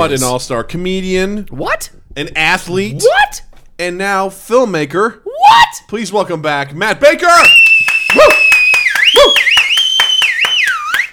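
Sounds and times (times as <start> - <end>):
speech: 0.0 - 8.4
loud piercing human whistle: 7.4 - 11.1
rapid clicking or clapping: 7.4 - 11.1.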